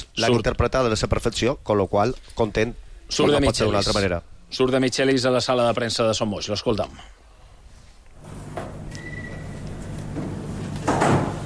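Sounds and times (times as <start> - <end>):
speech: 0.2 - 7.2
brief squeak: 8.9 - 9.7
door closing thud: 10.2 - 11.4.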